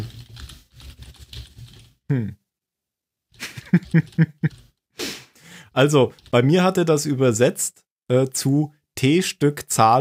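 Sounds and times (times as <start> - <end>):
rapid uneven typing on a computer keyboard: 0.0 - 2.0, 3.4 - 4.7, 6.0 - 6.4
speech: 2.1 - 2.4, 3.7 - 4.6, 5.8 - 9.9
laughter: 3.4 - 4.6.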